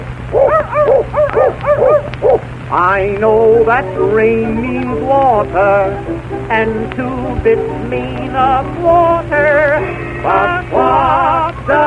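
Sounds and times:
low hum: 0.0 - 11.8
small dog yapping: 0.3 - 2.4
speech: 2.7 - 11.8.

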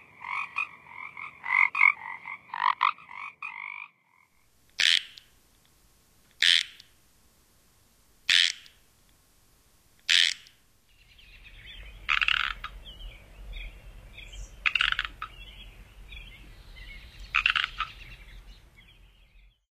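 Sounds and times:
Pacific chorus frog buzzy croaks: 0.0 - 5.3, 6.4 - 6.9, 8.3 - 8.8, 10.0 - 10.6, 12.0 - 12.8, 14.6 - 15.4, 17.3 - 18.0
chorus of quieter North American frog notes: 0.0 - 5.3, 6.4 - 6.9, 8.3 - 8.8, 10.1 - 10.6, 11.3 - 12.8, 14.2 - 15.5, 17.2 - 18.2.

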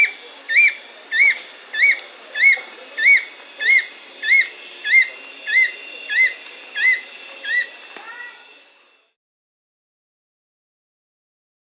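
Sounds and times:
fulvous-chinned nunlet calling in South America: 0.0 - 8.5.

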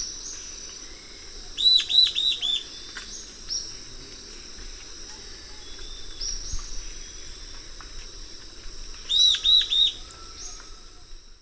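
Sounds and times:
Euler's Flycatcher Lathrotriccus euleri singing in the eastern lowlands of South America: 0.0 - 3.8, 5.1 - 7.8, 8.9 - 10.8
shrill insect drone: 0.0 - 11.4.

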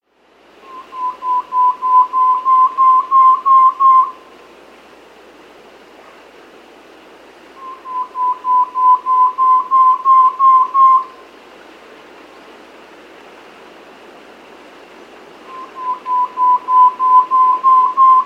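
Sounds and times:
Brown-Breasted Antpitta in South America: 0.6 - 4.2, 7.6 - 11.2, 15.4 - 18.2.

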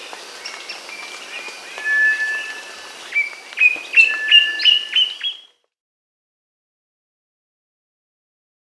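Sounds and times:
black antbird song in South America: 0.0 - 5.6.

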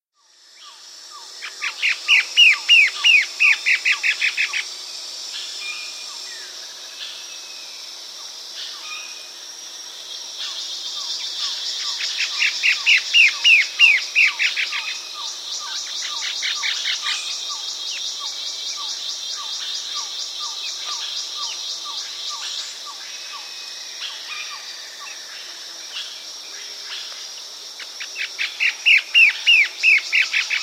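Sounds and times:
White-flanked antwren singing in South America: 0.6 - 4.7, 10.4 - 26.1, 28.0 - 30.6.

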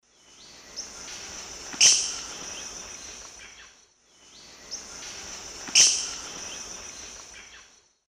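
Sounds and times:
Piaya melanogaster call in the Eastern Lowlands of South America: 0.8 - 3.7, 4.8 - 7.7.

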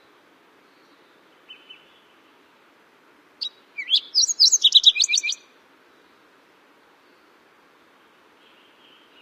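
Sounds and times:
Fox Sparrow song: 0.0 - 2.6, 3.4 - 6.3, 6.9 - 7.4, 8.3 - 9.2.

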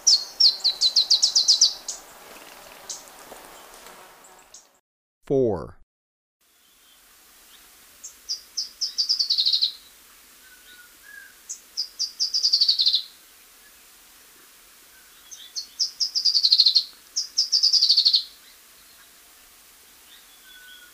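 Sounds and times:
black-crested warbler song in Ecuador: 0.0 - 4.8, 6.5 - 13.8, 14.9 - 19.2, 19.8 - 20.9
speech: 5.3 - 5.8.

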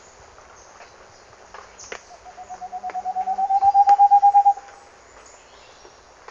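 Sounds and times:
Moustached Antpitta calling in Ecuador: 2.1 - 4.7.

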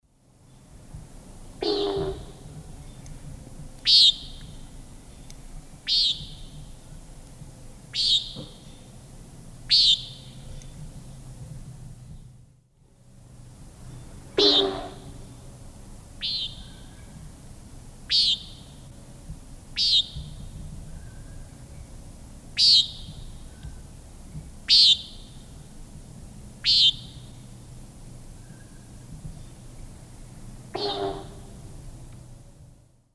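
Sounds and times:
Chordeiles minor calls in S. America Eastern Lowlands: 1.6 - 3.0, 3.8 - 4.6, 5.8 - 6.6, 8.0 - 8.8, 9.7 - 10.7, 13.9 - 15.2, 16.2 - 17.1, 18.1 - 18.7, 19.8 - 21.5, 22.6 - 23.8, 24.7 - 25.4, 26.6 - 27.4, 30.7 - 31.6.

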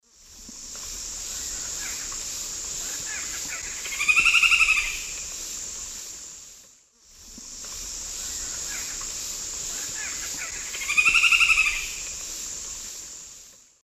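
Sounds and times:
hook-billed kite Chondrohierax uncinatus call in South American Eastern Lowlands: 3.0 - 5.3, 9.8 - 12.2.

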